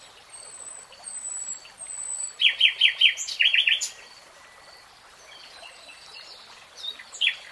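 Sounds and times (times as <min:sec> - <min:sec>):
nightingale singing rapid repeated notes: 0:00.4 - 0:04.6.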